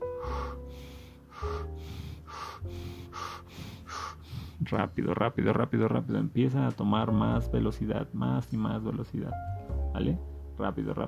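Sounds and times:
deep rhythmic breathing in through the mouth and out through the nose: 0.0s - 6.3s
speech: 4.7s - 11.0s.

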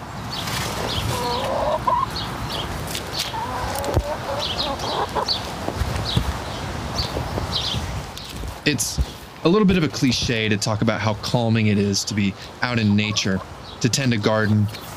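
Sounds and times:
outdoor noise: 0.0s - 14.9s
small flock of chickens clucking: 0.4s - 6.4s, 9.5s - 14.9s
speech: 8.7s - 14.9s.

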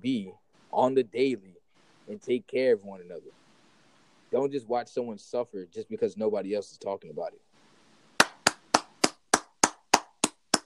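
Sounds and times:
speech: 0.0s - 1.5s, 2.1s - 3.4s, 4.3s - 7.5s
single pair of hands clapping: 8.2s - 10.6s.

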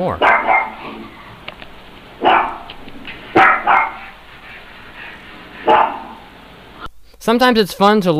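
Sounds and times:
speech: 0.0s - 0.3s, 7.2s - 8.1s
dog barking: 0.2s - 1.4s, 2.2s - 6.4s.

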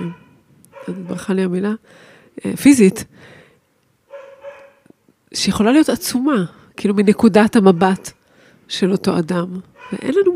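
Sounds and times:
female dog yipping: 0.0s - 1.2s, 4.1s - 4.9s, 9.8s - 10.2s
female dog barking excitedly: 0.0s - 1.3s, 4.1s - 4.9s, 7.7s - 8.2s, 9.8s - 10.2s
speech: 0.8s - 3.4s, 5.3s - 10.3s.

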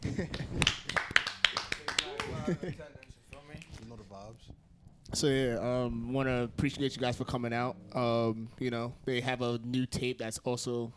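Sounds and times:
small group of people clapping: 0.0s - 3.9s
speech: 4.4s - 10.9s.

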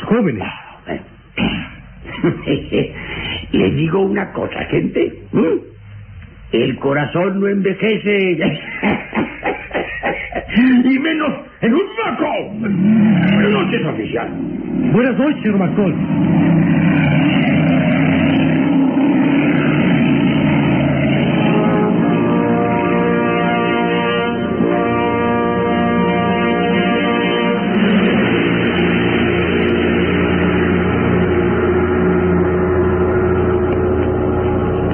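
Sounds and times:
speech: 0.1s - 1.1s, 2.2s - 5.7s, 6.5s - 9.0s, 11.6s - 17.2s
laughter: 2.0s - 3.2s, 8.4s - 11.6s
fast car engine roaring past a police cordon: 12.5s - 34.9s.

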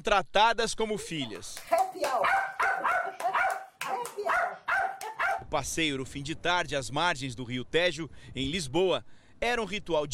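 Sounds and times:
speech: 0.0s - 2.5s, 5.5s - 10.1s
pet dog barking: 2.0s - 5.4s.

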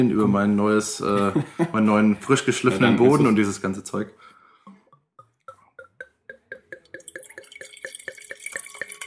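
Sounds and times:
speech: 0.0s - 4.3s
laughter: 1.0s - 3.3s
wine from a freshly opened bottle pouring into a glass: 6.4s - 9.0s.

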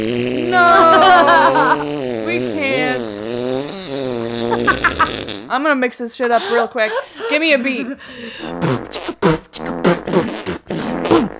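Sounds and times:
loud drawn-out buzzy fart: 0.0s - 5.6s, 8.4s - 11.3s
laughter: 0.5s - 3.0s, 4.5s - 5.2s, 6.3s - 8.2s
speech: 5.5s - 8.8s.

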